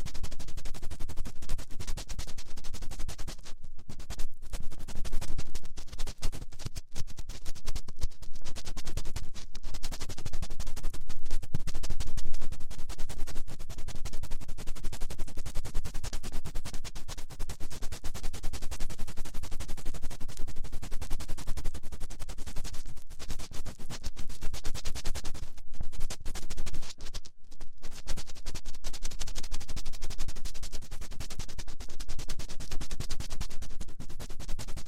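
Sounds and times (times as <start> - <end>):
fast finger rubbing and scratching against a microphone: 0.2 - 15.0, 15.6 - 34.8.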